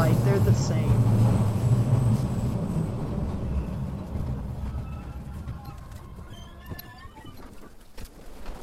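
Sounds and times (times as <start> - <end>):
heavy train rumbling past: 0.0 - 7.3
faint metallic squeals and clicks of train wheels: 1.9 - 8.6.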